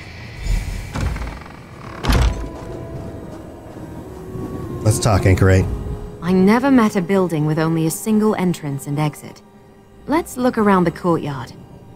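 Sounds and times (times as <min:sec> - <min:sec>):
video game lock being picked and door opening, thumps and rattles: 0:00.9 - 0:02.7
speech: 0:04.9 - 0:09.5, 0:10.1 - 0:11.6.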